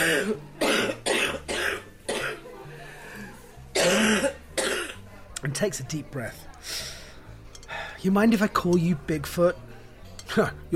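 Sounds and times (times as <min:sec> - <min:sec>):
woman clearing her throat: 0:00.0 - 0:02.4, 0:03.7 - 0:05.0
speech: 0:00.2 - 0:00.6, 0:05.6 - 0:06.9, 0:08.0 - 0:09.7, 0:10.3 - 0:10.7.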